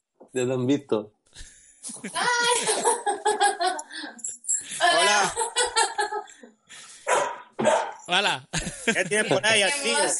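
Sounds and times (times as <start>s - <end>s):
speech: 0.3s - 4.2s, 8.1s - 10.1s
laughter: 1.4s - 4.1s, 4.7s - 6.4s, 8.5s - 9.8s
puppy barking: 7.1s - 8.1s.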